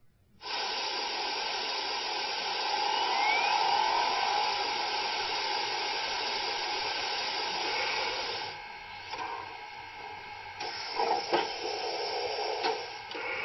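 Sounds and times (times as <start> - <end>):
steam locomotive hissing while being steamed up: 0.4 - 8.6, 10.6 - 13.3.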